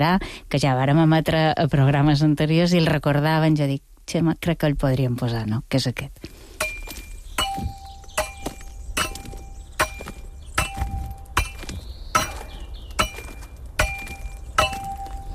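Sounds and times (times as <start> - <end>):
speech: 0.0 - 6.4
hand tools striking marès sandstone in a quarry: 6.6 - 15.3.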